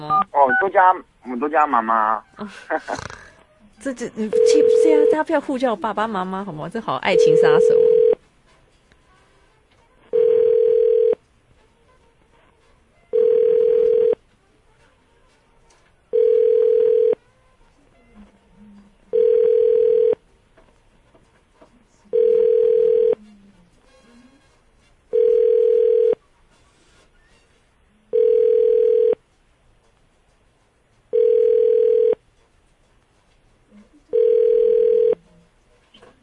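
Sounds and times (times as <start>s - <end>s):
speech: 0.1s - 3.2s, 3.8s - 7.9s
telephone ringback tone of an unanswered call: 4.3s - 5.2s, 7.1s - 8.2s, 10.1s - 11.2s, 13.1s - 14.2s, 16.1s - 17.2s, 19.1s - 20.2s, 22.1s - 23.2s, 25.1s - 26.2s, 28.1s - 29.2s, 31.1s - 32.2s, 34.1s - 35.2s.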